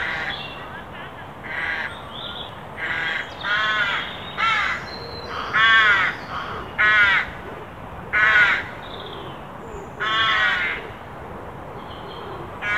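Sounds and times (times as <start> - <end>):
Carrion crow Corvus corone cawing: 1.5 - 1.9, 2.8 - 7.4, 8.1 - 8.8, 10.0 - 10.9.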